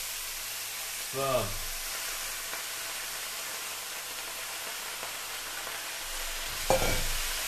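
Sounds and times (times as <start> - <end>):
wet spinach frying in hot olive oil in a pan: 0.0 - 7.4
speech: 1.1 - 1.6
pan clattering as it is stirred: 6.7 - 7.2.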